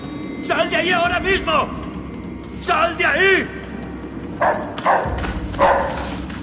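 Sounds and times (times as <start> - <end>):
speech: 0.4 - 2.0, 2.6 - 3.6, 4.4 - 5.3
dog barking: 4.4 - 6.1.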